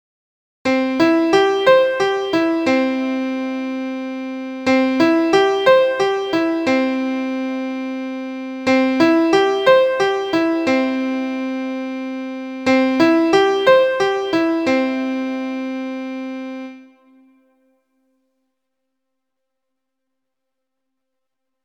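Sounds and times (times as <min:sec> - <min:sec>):
broken chord: 0:00.7 - 0:17.3.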